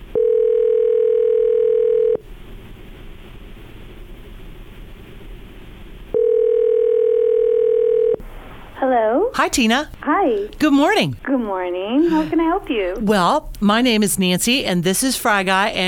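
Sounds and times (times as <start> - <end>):
ringback tone from an outgoing phone call during a radio broadcast: 0.1 - 2.2, 6.1 - 8.2
speech: 9.4 - 15.8.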